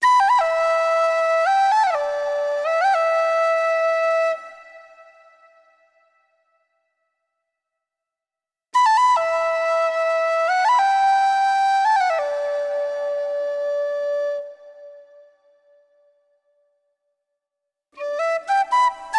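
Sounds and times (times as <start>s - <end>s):
flute melodies: 0.0s - 6.2s, 8.8s - 15.8s, 18.0s - 19.1s.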